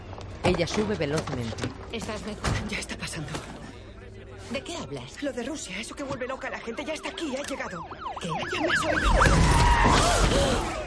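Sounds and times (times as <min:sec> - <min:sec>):
speech: 0:00.5 - 0:03.6, 0:04.5 - 0:10.8
ambulance siren wailing as the vehicle crashes in a park: 0:05.2 - 0:10.8.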